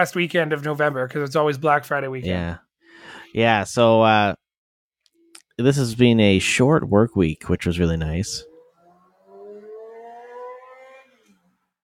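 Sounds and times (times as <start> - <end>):
speech: 0.0 - 4.4, 5.6 - 8.5
car engine revving: 6.4 - 11.6.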